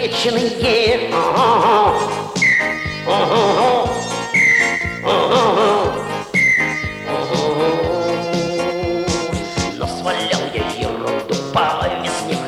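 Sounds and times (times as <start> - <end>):
speech: 0.2 - 1.7
loud busy band accompaniment: 0.9 - 12.4
short high spring whistle toots: 2.1 - 8.2.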